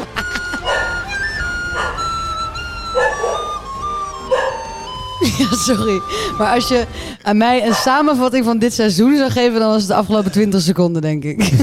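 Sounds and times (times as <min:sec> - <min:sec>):
laughter: 0:00.0 - 0:01.3, 0:05.0 - 0:06.5, 0:11.4 - 0:11.6
jingle: 0:00.0 - 0:06.2
steady whining tone: 0:00.0 - 0:07.2
dog barking in short high-pitched yips: 0:00.6 - 0:05.2, 0:07.6 - 0:08.0
speech: 0:05.4 - 0:11.6.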